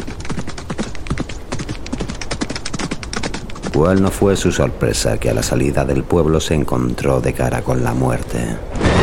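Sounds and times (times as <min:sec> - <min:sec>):
horse hooves clip-clopping: 0:00.0 - 0:06.0
speech: 0:03.8 - 0:08.9.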